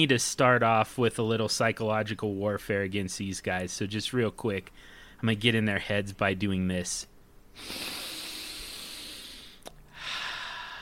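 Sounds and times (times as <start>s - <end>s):
speech: 0.0s - 8.0s
loud inhale through the nose: 7.6s - 10.7s.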